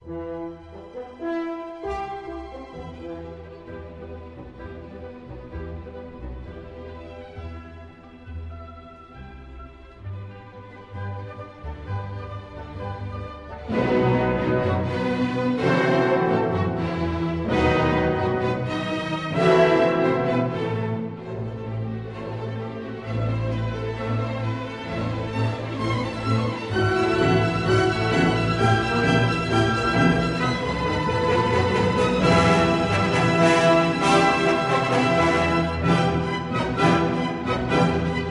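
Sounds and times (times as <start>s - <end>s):
orchestra playing symphony movement in E minor, adagio and allegro molto: 0.0s - 38.2s.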